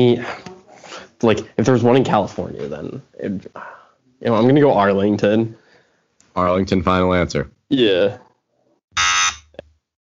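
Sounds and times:
speech: 0:00.0 - 0:00.4, 0:01.2 - 0:05.6, 0:06.4 - 0:08.2
harsh electronic wrong-answer buzzer: 0:09.0 - 0:09.6.

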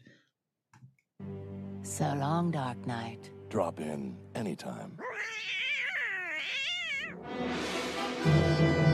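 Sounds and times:
speech: 0:02.0 - 0:05.6, 0:07.3 - 0:08.8
cat meowing: 0:05.0 - 0:07.2.

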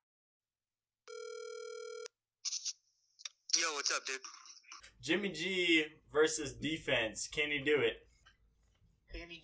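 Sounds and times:
telephone ringing tone: 0:01.1 - 0:02.1
speech: 0:03.7 - 0:04.4, 0:05.0 - 0:08.1, 0:09.1 - 0:09.4.

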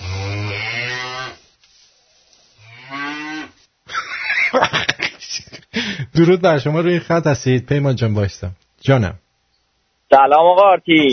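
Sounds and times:
cow mooing: 0:00.0 - 0:01.4, 0:02.6 - 0:03.6
noisy laughter-like sound: 0:03.9 - 0:05.7
speech: 0:06.2 - 0:09.2, 0:10.1 - 0:11.1.

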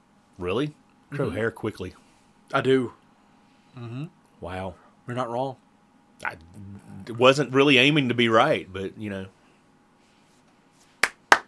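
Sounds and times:
speech: 0:00.4 - 0:03.0, 0:03.7 - 0:05.6, 0:06.2 - 0:09.4
slow deliberate sarcastic hand claps: 0:10.9 - 0:11.4.

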